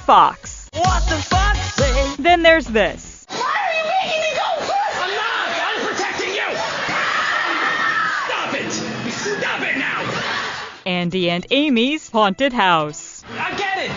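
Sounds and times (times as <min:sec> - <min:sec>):
speech: 0:00.1 - 0:01.4, 0:02.0 - 0:03.1, 0:11.0 - 0:13.9
people screaming in a haunted house: 0:03.3 - 0:10.8
bursts of laughter: 0:09.1 - 0:10.8.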